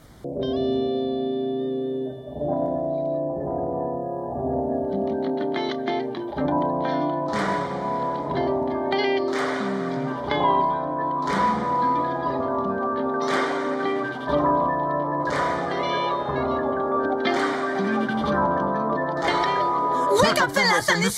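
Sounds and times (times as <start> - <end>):
electronic music with heavily effected synth chords: 0.3 - 21.1
bright crackling bursts: 5.4 - 20.0.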